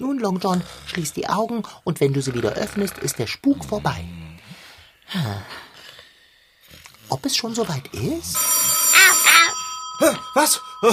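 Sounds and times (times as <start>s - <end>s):
speech: 0.0s - 4.2s, 5.1s - 5.6s, 7.1s - 8.7s, 10.0s - 10.9s
telephone ringing: 8.4s - 10.9s.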